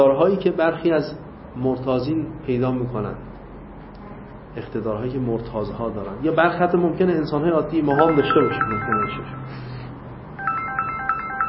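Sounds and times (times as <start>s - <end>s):
speech: 0.0s - 3.4s, 4.6s - 9.7s
phone electronic ringtone chirping: 7.9s - 9.8s, 10.4s - 11.4s.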